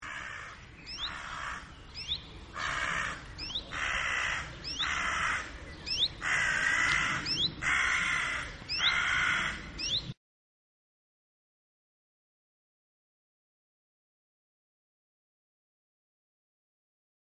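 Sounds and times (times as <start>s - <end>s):
carrion crow Corvus corone call: 0.0s - 1.7s, 2.5s - 9.9s.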